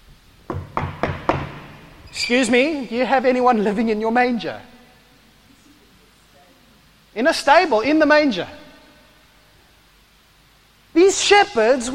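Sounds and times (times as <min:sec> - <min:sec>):
firm knocking on a door: 0:00.5 - 0:01.7
speech: 0:02.2 - 0:04.7, 0:07.2 - 0:08.6, 0:11.1 - 0:11.9.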